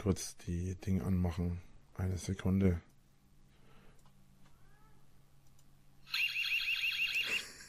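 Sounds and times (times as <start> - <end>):
speech: 0.0 - 2.9
electronic alarm ringing with a warbling rising-and-falling tone: 6.1 - 7.5.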